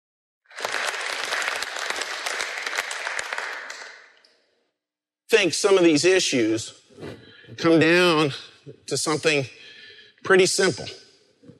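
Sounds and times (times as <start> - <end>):
crowd applauding: 0.5 - 4.2
speech: 5.3 - 9.6, 10.2 - 11.0.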